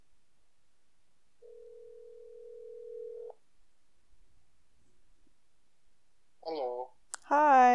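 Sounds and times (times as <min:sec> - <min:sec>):
cell phone call electronic ring tone: 0:01.4 - 0:03.4.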